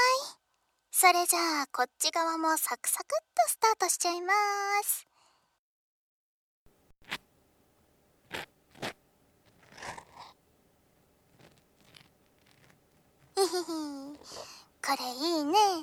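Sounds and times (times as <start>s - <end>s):
speech: 1.0s - 5.1s, 8.3s - 9.0s, 13.4s - 15.8s
ear pick cleaning an ear: 7.0s - 7.3s, 8.2s - 14.5s.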